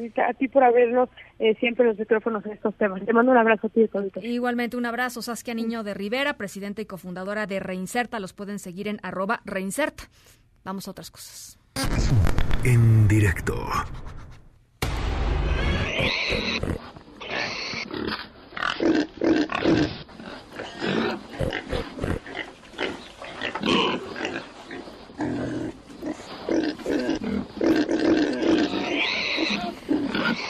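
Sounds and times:
speech: 0.0s - 14.2s
pig grunting and squealing at San Francisco airport: 15.5s - 30.4s.

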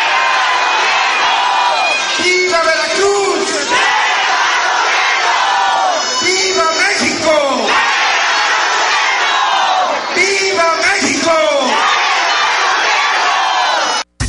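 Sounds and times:
crowd shouting angry protest chants in unison: 0.0s - 2.2s, 3.3s - 6.2s, 7.4s - 14.1s
noisy crowd commotion: 0.0s - 14.1s.

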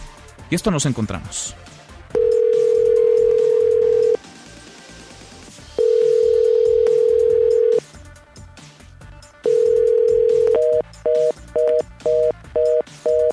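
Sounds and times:
speech: 0.5s - 1.8s
telephone ringback tone: 2.2s - 4.2s, 5.8s - 7.8s, 9.4s - 13.3s.

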